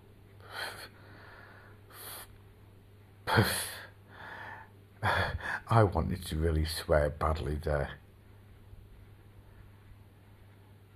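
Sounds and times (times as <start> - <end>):
deep breathing: 0.4 - 2.3, 4.1 - 5.7
speech: 3.3 - 3.7, 5.0 - 8.0.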